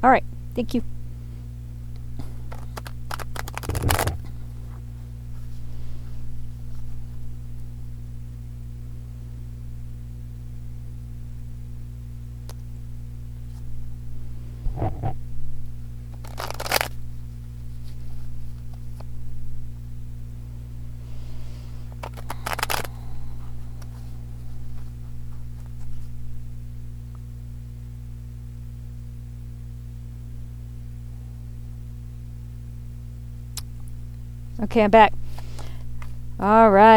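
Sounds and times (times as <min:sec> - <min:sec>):
speech: 0:00.0 - 0:01.0, 0:34.6 - 0:35.2, 0:36.4 - 0:36.9
steady low electrical hum: 0:00.0 - 0:36.9
deck of cards being shuffled: 0:02.2 - 0:05.7, 0:16.1 - 0:19.1, 0:21.2 - 0:26.2.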